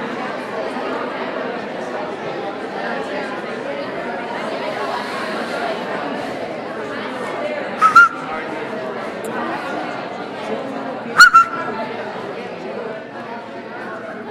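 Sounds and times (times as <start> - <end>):
crowd chattering in a room: 0.0 - 14.2
short sharp whistle blasts: 7.8 - 8.4, 11.2 - 11.8.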